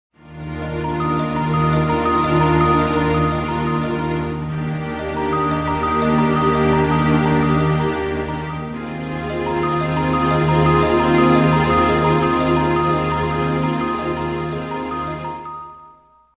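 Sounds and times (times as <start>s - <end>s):
sustained string chords in a music logo: 0.2s - 16.0s
contemplative bell pattern in a music logo: 0.7s - 16.3s.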